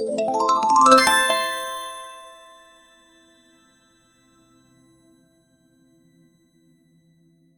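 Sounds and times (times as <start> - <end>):
cartoon magical sparkle sound effect: 0.1 - 3.9.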